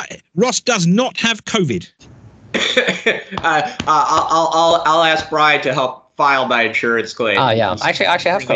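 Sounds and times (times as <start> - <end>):
speech: 0.1 - 8.5
person coughing harshly: 2.6 - 3.8
laughter: 2.6 - 6.8.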